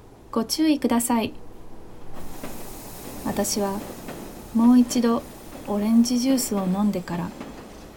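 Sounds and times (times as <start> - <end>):
low rumble of a train: 0.0 - 6.2
train pulling into a station: 0.0 - 7.9
speech: 0.4 - 1.4, 3.3 - 3.9, 4.5 - 7.5
steady hiss of train brakes and air: 1.3 - 7.9.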